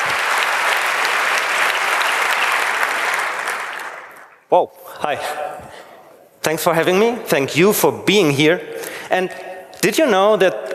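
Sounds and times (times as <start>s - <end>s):
audience applause: 0.0s - 4.5s
speech: 4.5s - 5.8s, 6.4s - 10.7s.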